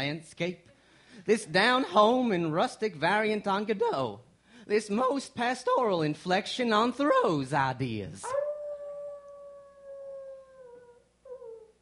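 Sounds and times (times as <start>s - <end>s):
speech: 0.0s - 8.4s
coyote howling: 8.2s - 11.8s.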